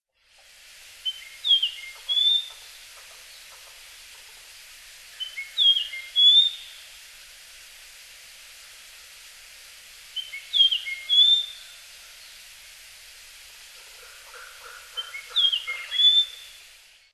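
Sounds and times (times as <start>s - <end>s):
Japanese grosbeak in Hyogo: 5.1s - 6.7s, 10.2s - 11.6s, 14.3s - 16.6s.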